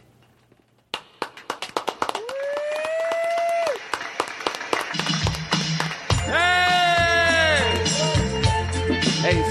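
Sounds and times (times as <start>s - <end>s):
live audience applause: 0.9s - 8.8s
long high whistles or cheers: 2.2s - 3.8s, 6.2s - 8.3s.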